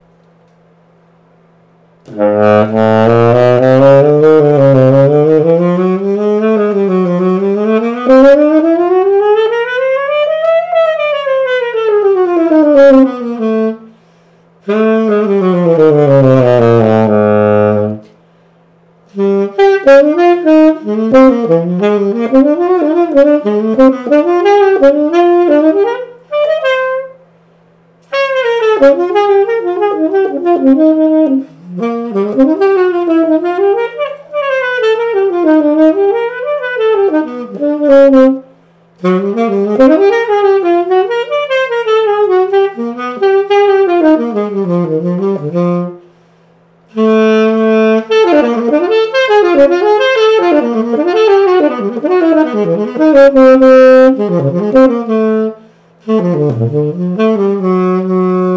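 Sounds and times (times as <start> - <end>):
jazz tenor saxophone with mouthpiece: 2.0 - 18.3, 19.0 - 27.4, 28.0 - 58.5.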